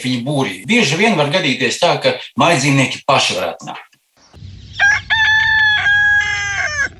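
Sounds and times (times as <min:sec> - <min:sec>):
speech: 0:00.0 - 0:03.9
rooster crowing: 0:04.7 - 0:06.9.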